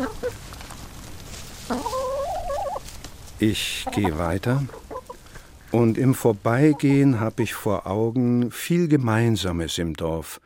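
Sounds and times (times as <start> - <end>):
chickens clucking in a village animal yard behind a cemetery wall: 0.0 - 8.1
outdoor noise: 0.0 - 10.4
speech: 3.4 - 4.8, 5.7 - 10.4.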